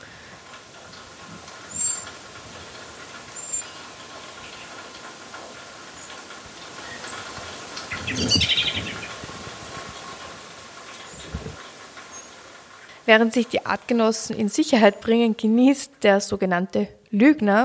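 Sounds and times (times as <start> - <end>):
faint outdoor noise: 0.0 - 17.6
blackbird alarm call for aerial predators: 7.8 - 9.2
speech: 8.2 - 8.9, 13.1 - 17.6.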